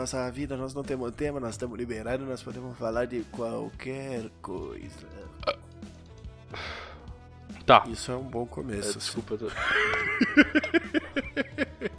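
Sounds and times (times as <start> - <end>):
speech: 0.0 - 6.8, 7.7 - 11.7
small timid burp: 5.4 - 5.7
laughter: 9.4 - 11.9.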